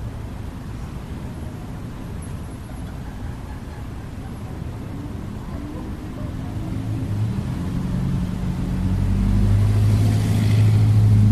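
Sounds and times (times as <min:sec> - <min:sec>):
deep engine rumble of urban traffic: 0:00.0 - 0:11.2
vehicle revving through a city street: 0:04.7 - 0:11.2.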